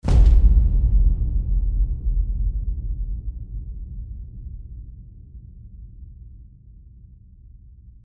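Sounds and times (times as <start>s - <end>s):
epic low hit: 0.0s - 6.0s.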